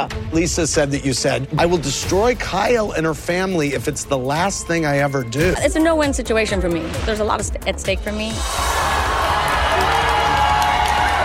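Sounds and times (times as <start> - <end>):
speech: 0.0 - 8.6
large crowd of fans booing: 8.4 - 11.2.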